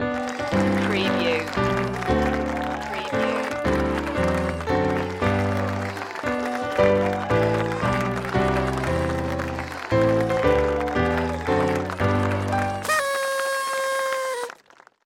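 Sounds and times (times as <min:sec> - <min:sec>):
birthday song on piano at a party: 0:00.0 - 0:13.3
lively applause at a party: 0:00.0 - 0:15.0
party toot: 0:12.8 - 0:14.6.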